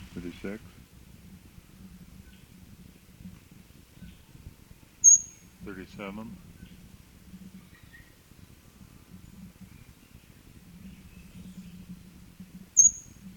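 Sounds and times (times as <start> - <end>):
low quiet rustling: 0.0 - 13.3
speech: 0.4 - 0.8, 5.7 - 6.5
faint high bird calls: 5.0 - 5.5, 12.8 - 13.2
bird chirping overhead: 5.0 - 5.6, 7.6 - 8.2, 9.1 - 12.0, 12.7 - 13.3.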